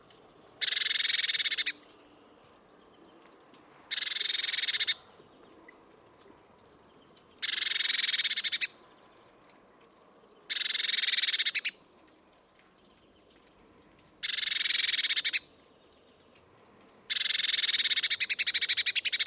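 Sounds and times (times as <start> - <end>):
Eurasian blue tit giving a harsh buzzy churr: 0.6 - 1.8, 3.9 - 5.0, 7.4 - 8.8, 10.5 - 11.8, 14.2 - 15.5, 17.1 - 19.2.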